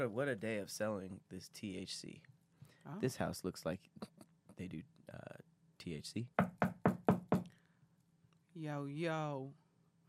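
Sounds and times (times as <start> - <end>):
speech: 0.0 - 6.5, 8.6 - 10.0
firm knocks on a wooden house door: 6.4 - 7.5.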